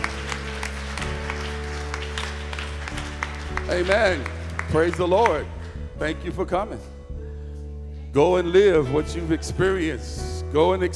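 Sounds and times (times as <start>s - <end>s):
crowd clapping hands in a steady rhythm: 0.0s - 5.7s
speech: 3.7s - 6.9s, 8.1s - 10.9s.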